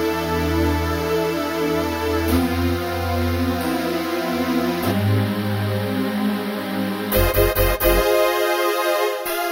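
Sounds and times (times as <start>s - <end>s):
hybrid synthesizer hiss power patch: 0.1s - 9.4s.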